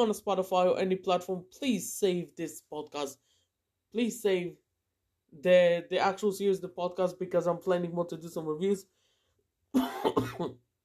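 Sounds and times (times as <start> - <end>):
speech: 0.0 - 3.3, 3.9 - 4.6, 5.3 - 9.0, 9.7 - 10.6
person coughing with harsh rasping bursts: 9.7 - 10.6.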